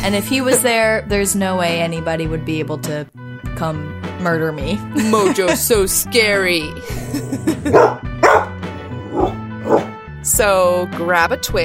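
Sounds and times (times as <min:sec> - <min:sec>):
speech: 0:00.0 - 0:08.1, 0:10.3 - 0:11.6
laughter: 0:05.0 - 0:05.8, 0:06.8 - 0:08.0
dog barking: 0:07.6 - 0:10.0.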